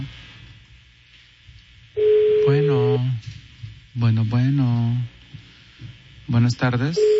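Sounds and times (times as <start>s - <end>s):
telephone ring tone over a phone line: 2.0s - 3.1s, 7.0s - 7.1s
speech: 4.0s - 5.1s, 5.8s - 7.1s.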